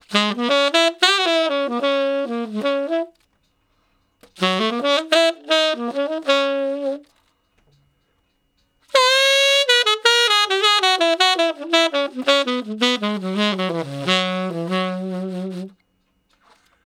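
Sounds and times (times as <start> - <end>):
slow blues tenor saxophone solo pickup in D flat: 0.0 - 3.3, 4.2 - 7.2, 8.9 - 15.8.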